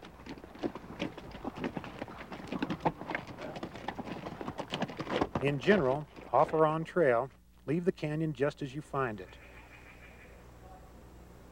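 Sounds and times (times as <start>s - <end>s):
mule or horse hooves clip-clopping on a dirt canyon trail: 0.0s - 7.4s
speech: 5.4s - 9.4s.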